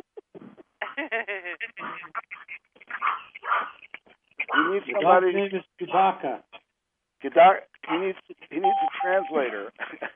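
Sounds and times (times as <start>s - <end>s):
speech: 1.0s - 2.3s, 4.6s - 6.5s, 7.2s - 10.0s
dog barking and yelping over a phone line: 1.9s - 5.0s.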